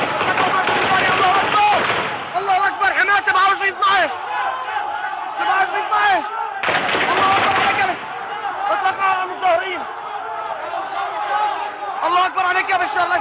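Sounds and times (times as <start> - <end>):
sharp bursts of gunfire: 0.0 - 2.4, 6.6 - 8.2
protest crowd shouting and chanting: 0.0 - 13.1.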